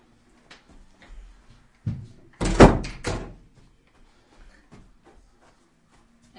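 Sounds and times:
door bumping and handling: 1.9 - 3.4
door pushed shut with a loud bang: 2.4 - 3.4.

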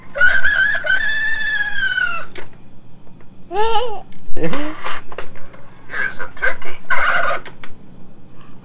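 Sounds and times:
rooster crowing from a children's pull-string animal-sound toy: 0.1 - 2.5, 6.9 - 7.5
speech: 3.6 - 4.7.

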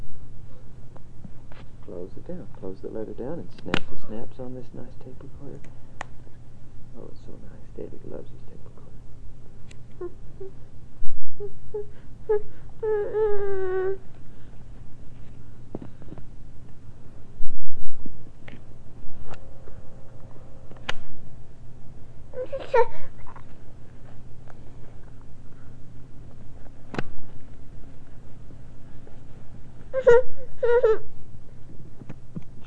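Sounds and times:
faint steady low hum: 0.0 - 32.6
speech: 1.9 - 5.9, 7.0 - 8.7, 10.0 - 10.7, 11.4 - 14.1, 22.5 - 23.0, 30.1 - 30.9
baby fussing and whimpering late at night: 10.0 - 10.6, 11.3 - 14.1, 22.3 - 23.5, 29.9 - 31.1.

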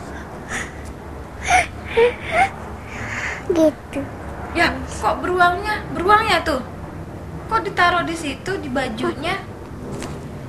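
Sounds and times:
child making playful imitation crying sobs: 0.0 - 3.7
speech: 2.0 - 2.4, 3.6 - 6.7, 7.5 - 9.5.

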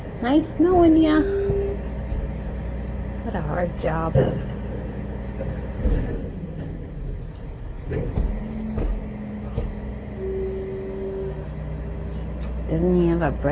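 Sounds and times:
large garbage truck engine idling outside: 0.0 - 13.5
speech: 0.2 - 1.5, 3.3 - 4.5, 5.4 - 6.3, 7.9 - 8.3, 12.7 - 13.5
clunks and thuds: 0.8 - 2.6, 3.9 - 12.6.

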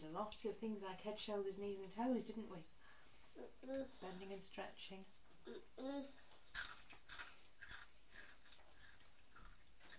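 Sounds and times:
speech: 0.0 - 2.8, 3.4 - 6.7
crisps being crunched: 6.5 - 9.9.

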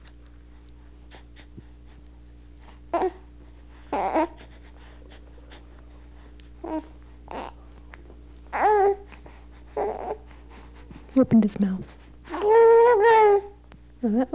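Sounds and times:
infant crying in short wails: 3.9 - 4.4, 6.6 - 7.6, 8.5 - 9.1, 9.8 - 10.2, 12.3 - 13.6
speech: 11.2 - 12.0, 14.0 - 14.3.

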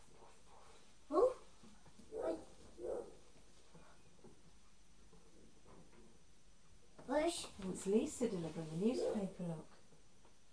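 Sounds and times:
dog barking: 2.1 - 3.2, 9.0 - 9.4
speech: 7.7 - 9.8.

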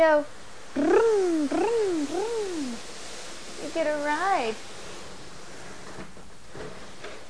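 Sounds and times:
speech: 0.0 - 1.6, 3.7 - 4.7
high chair with a child slid across a hard floor: 2.8 - 7.2.

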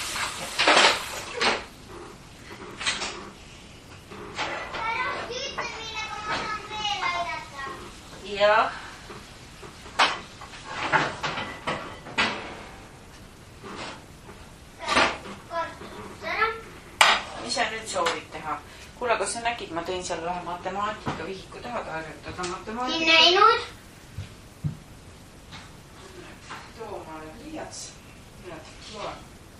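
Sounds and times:
pans and cupboard doors clattering during a search for a frying pan: 0.0 - 13.0, 13.6 - 16.2, 17.0 - 18.8
child talking: 4.7 - 8.0, 14.8 - 16.7, 22.7 - 23.8
speech: 8.4 - 8.8, 19.9 - 23.8.

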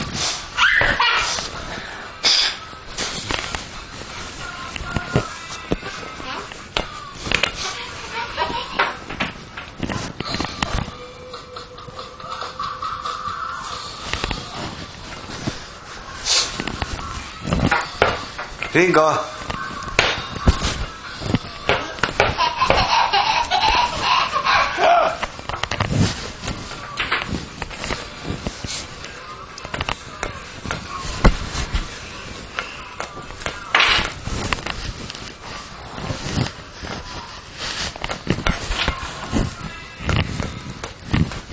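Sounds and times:
faint voices: 0.0 - 41.5
laughter: 11.4 - 13.6, 22.1 - 25.2
speech: 18.8 - 19.3
ball bouncing on a hard floor: 21.6 - 22.9.

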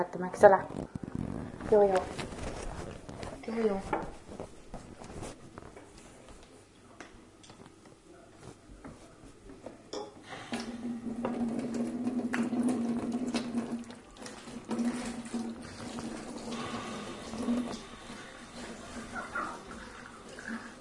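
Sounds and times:
speech: 0.0 - 2.3, 3.5 - 4.2
carbonated drink fizzing: 10.5 - 20.8.

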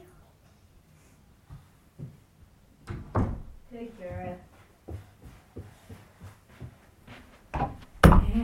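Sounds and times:
soft shuffling footsteps: 1.0 - 2.7, 3.7 - 8.4.

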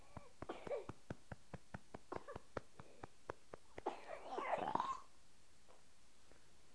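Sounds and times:
person coughing: 0.5 - 1.0, 2.1 - 2.5, 3.8 - 5.1
rough throaty burp: 4.3 - 5.1.

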